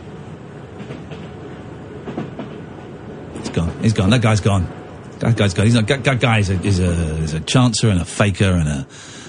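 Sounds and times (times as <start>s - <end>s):
train rolling on rails: 0.0s - 9.2s
wheels clickety-clack on track joints: 0.7s - 7.4s
speech: 3.6s - 9.2s.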